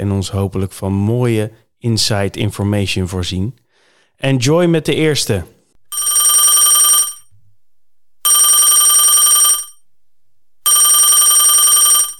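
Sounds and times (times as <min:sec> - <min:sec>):
speech: 0:00.0 - 0:03.6, 0:04.2 - 0:06.2
telephone ringing: 0:05.9 - 0:07.3, 0:08.2 - 0:09.9, 0:10.6 - 0:12.1.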